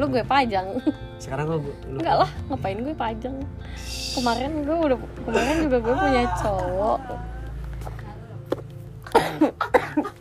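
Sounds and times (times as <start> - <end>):
speech: 0.0 - 7.4
person coughing harshly: 9.1 - 10.1.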